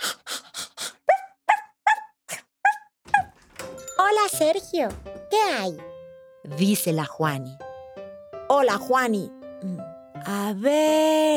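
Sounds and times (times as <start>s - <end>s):
dog barking: 1.1s - 3.3s
speech: 4.2s - 7.6s, 8.5s - 11.3s.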